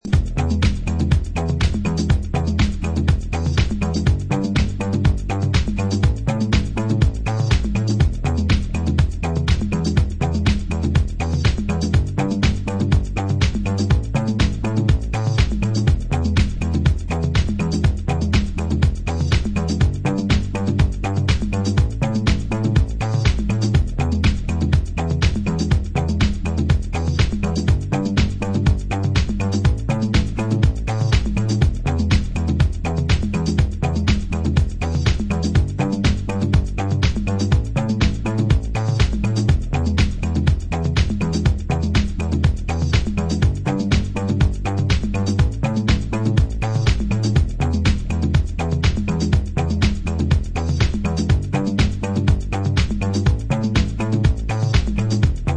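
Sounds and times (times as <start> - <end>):
bass beat: 0.0 - 55.5.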